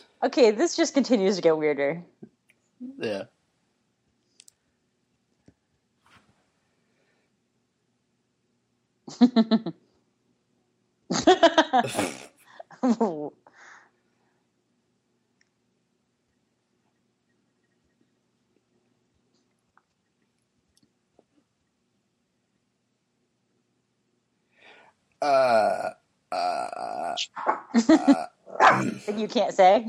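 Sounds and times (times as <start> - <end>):
speech: 0.0 - 3.4, 9.1 - 9.8, 11.1 - 13.4, 25.2 - 29.8
dog making throaty grumbling whines and growls: 28.4 - 29.2.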